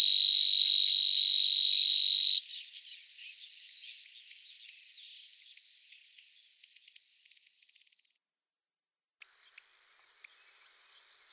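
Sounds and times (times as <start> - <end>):
nightingale cricket trilling: 0.0 - 2.4.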